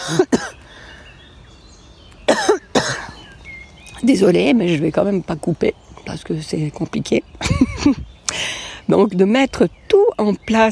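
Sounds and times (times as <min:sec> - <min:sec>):
sharp double coughs: 0:00.0 - 0:00.6, 0:02.3 - 0:03.2
faint ambience: 0:00.0 - 0:10.7
speech: 0:00.1 - 0:00.6, 0:04.0 - 0:10.7
laughter: 0:07.4 - 0:08.0.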